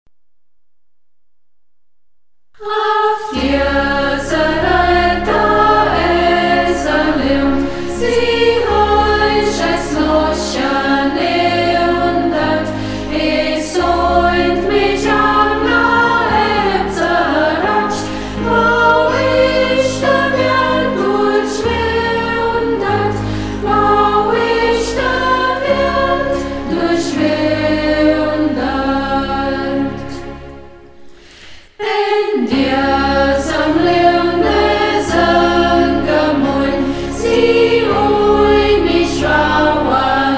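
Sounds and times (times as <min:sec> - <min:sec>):
choir singing in Burgberg local dialect: 0:02.6 - 0:40.3.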